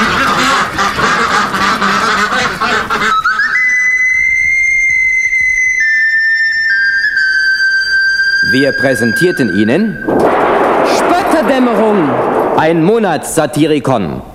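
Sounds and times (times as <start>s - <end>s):
ducks quacking: 0.0s - 3.8s
high whistling tones: 3.2s - 13.3s
speech: 8.6s - 10.4s, 11.6s - 14.3s.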